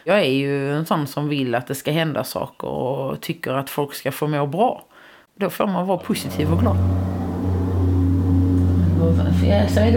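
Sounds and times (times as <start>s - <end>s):
speech: 0.0s - 7.3s, 9.0s - 9.9s
tractor engine droning while pulling a manure trailer: 6.2s - 9.9s.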